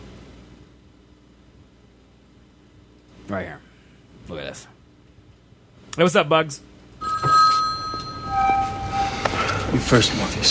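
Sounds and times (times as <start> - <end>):
speech: 3.3 - 3.7, 4.3 - 4.8, 6.0 - 6.7, 9.7 - 10.4
telephone ringing in a movie scene: 7.0 - 9.7.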